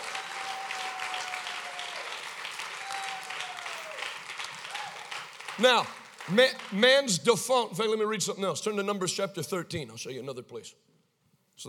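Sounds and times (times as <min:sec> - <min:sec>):
large crowd applauding: 0:00.0 - 0:07.1
speech: 0:05.6 - 0:10.9.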